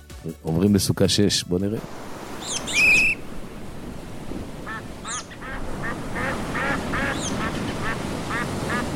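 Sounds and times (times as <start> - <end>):
speech: 0.3 - 2.1
outdoor water noise: 1.8 - 8.9
ducks quacking: 4.7 - 8.9.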